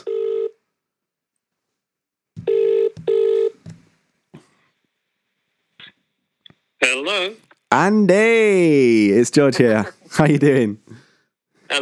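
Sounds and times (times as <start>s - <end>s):
outgoing phone call ringback tone: 0.0s - 0.6s, 2.4s - 3.6s
loud double phone ring pulse: 2.4s - 3.6s
speech: 6.8s - 11.0s.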